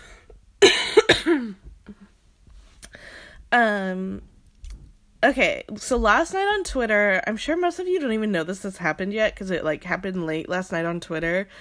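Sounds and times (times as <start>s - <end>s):
person coughing: 0.6s - 2.0s
speech: 3.5s - 4.3s, 5.2s - 11.5s.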